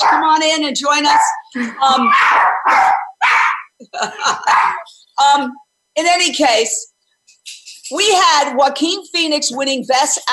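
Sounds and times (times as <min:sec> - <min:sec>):
dog barking: 0:00.0 - 0:00.4, 0:01.0 - 0:01.4, 0:02.0 - 0:03.7, 0:04.4 - 0:04.9
speech: 0:00.1 - 0:03.0, 0:03.8 - 0:10.3
laughter: 0:01.5 - 0:02.2, 0:03.8 - 0:05.0.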